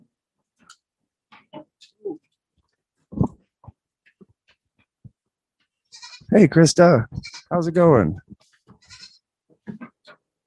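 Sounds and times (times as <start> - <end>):
goat bleating: 5.8 - 6.4, 7.1 - 7.6, 8.7 - 9.3
speech: 6.3 - 8.2.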